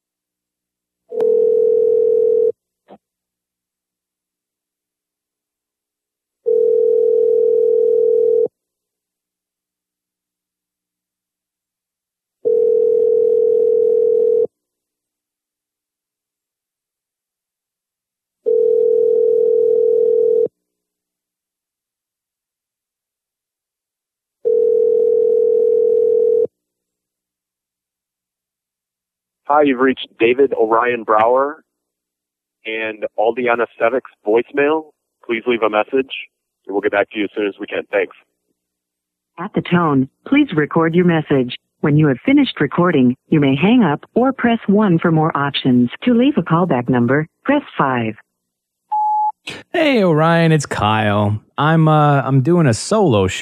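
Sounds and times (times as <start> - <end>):
outgoing phone call ringback tone: 1.1 - 2.5, 6.5 - 8.5, 12.4 - 14.5, 18.5 - 20.5, 24.4 - 26.5
speech: 29.5 - 31.6, 32.6 - 38.3, 39.4 - 48.2, 49.4 - 53.4.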